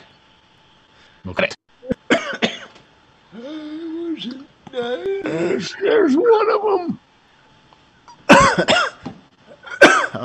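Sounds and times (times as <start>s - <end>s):
speech: 1.2s - 1.6s, 4.2s - 7.0s
person coughing during a live stream: 2.0s - 2.8s, 8.2s - 10.2s.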